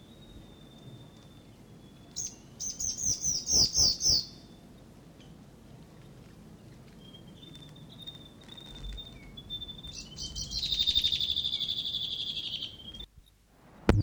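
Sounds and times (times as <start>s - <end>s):
male whitehead territorial call: 0.0s - 4.6s, 7.2s - 13.1s.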